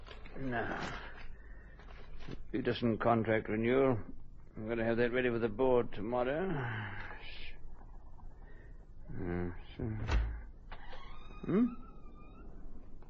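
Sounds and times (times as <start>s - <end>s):
speech: 0.4s - 1.1s, 2.3s - 7.4s, 9.1s - 10.3s, 11.4s - 11.8s
door shutting with a dull thud: 9.9s - 11.8s
door creaking open on squeaky hinges: 9.9s - 13.0s.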